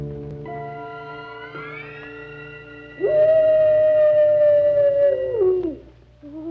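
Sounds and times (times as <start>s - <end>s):
wolf howling: 1.5s - 5.9s.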